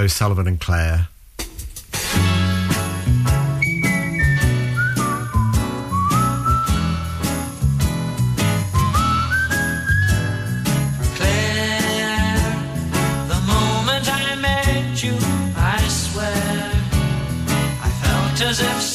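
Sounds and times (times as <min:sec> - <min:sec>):
speech: 0:00.0 - 0:01.1
pop backing of bass, drums and chiming keys: 0:01.4 - 0:18.9
whistled tune in a pop song: 0:03.5 - 0:07.6, 0:08.4 - 0:11.6.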